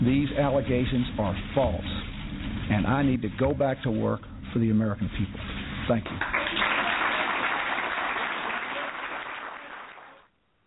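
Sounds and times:
speech: 0.1s - 2.1s, 2.7s - 6.4s
crowd applauding: 6.1s - 10.3s.

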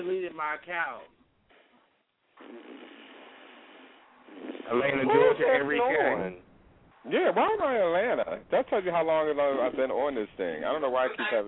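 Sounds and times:
speech: 0.0s - 1.2s, 4.3s - 11.4s
person snoring: 2.4s - 5.0s.

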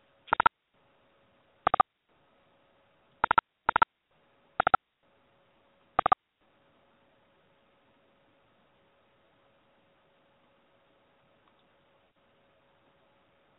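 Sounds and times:
faint steady hum: 0.0s - 13.5s
telephone key beeps dialing a cell phone call back: 3.2s - 3.8s.

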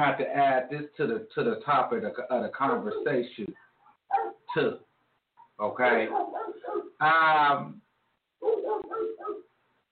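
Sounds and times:
speech: 0.0s - 4.9s, 5.6s - 6.4s, 7.0s - 7.8s
dog barking: 2.7s - 4.6s, 5.4s - 7.0s, 8.4s - 9.5s.

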